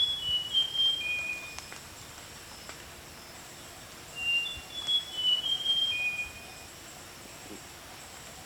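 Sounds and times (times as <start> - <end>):
rusty mouse-warbler song of thin pure whistles: 0.0 - 2.1, 3.5 - 6.8
steady background hiss: 0.0 - 8.4.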